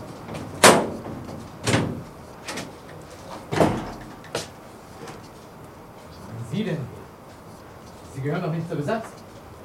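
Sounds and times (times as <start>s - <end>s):
bolted wooden and metal door aboard a ship clunking open: 0.3s - 2.7s, 3.5s - 4.4s
speech: 8.2s - 9.2s.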